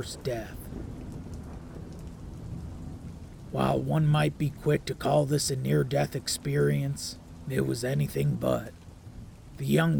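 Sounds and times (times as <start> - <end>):
speech: 0.0 - 0.7, 3.5 - 8.8, 9.6 - 9.9
deep rolling thunder: 0.0 - 3.6
heavy rain: 0.0 - 9.9.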